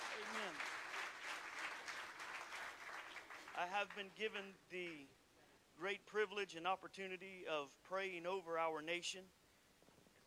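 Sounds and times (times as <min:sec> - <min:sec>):
crowd of people applauding: 0:00.0 - 0:04.1
speech: 0:03.6 - 0:05.2, 0:05.8 - 0:09.4.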